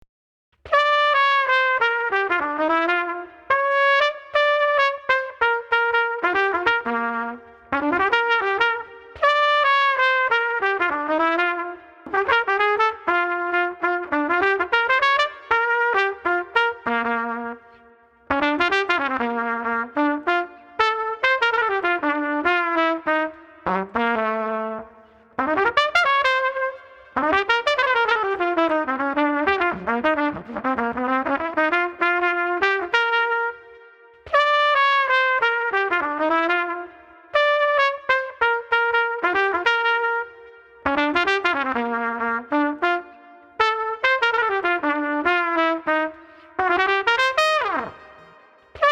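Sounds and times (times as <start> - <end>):
street trumpet playing a Dixieland melody: 0.7 - 17.6, 18.3 - 33.6, 34.3 - 48.9.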